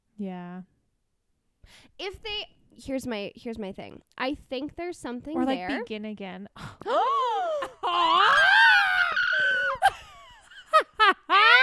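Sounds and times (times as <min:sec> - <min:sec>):
speech: 0:00.2 - 0:00.8, 0:01.7 - 0:07.3
woman screaming: 0:06.9 - 0:10.0, 0:11.3 - 0:11.6.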